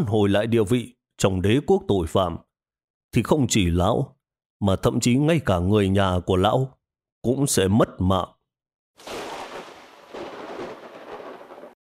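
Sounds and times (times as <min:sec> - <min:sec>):
speech: 0:00.0 - 0:02.5, 0:03.1 - 0:08.4, 0:09.0 - 0:09.2
rumbling thunder: 0:09.0 - 0:11.8.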